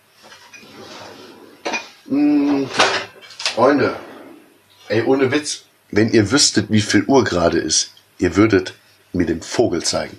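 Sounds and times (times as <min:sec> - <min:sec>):
pots and pans clattering as a cooking pot is fetched in a kitchen: 0:00.3 - 0:03.5
speech: 0:02.1 - 0:03.0, 0:03.6 - 0:04.1, 0:04.9 - 0:10.1.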